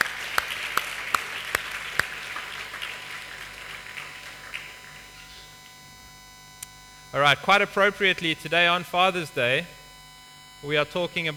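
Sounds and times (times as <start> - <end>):
room full of people applauding: 0.0 - 5.4
speech: 7.1 - 9.8, 10.6 - 11.3.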